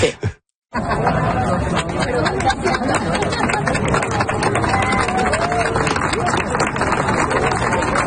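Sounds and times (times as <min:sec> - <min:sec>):
speech: 0:00.0 - 0:01.2
laughter: 0:00.0 - 0:08.0
crowd gathered for the sunset chattering: 0:00.7 - 0:08.0.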